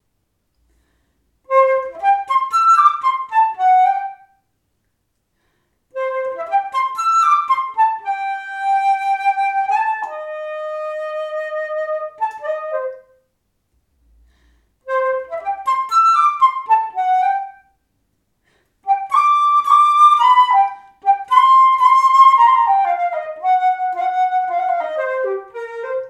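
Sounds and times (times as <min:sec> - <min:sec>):
flute: 0:01.5 - 0:04.4, 0:05.9 - 0:13.3, 0:14.8 - 0:17.8, 0:18.8 - 0:26.0.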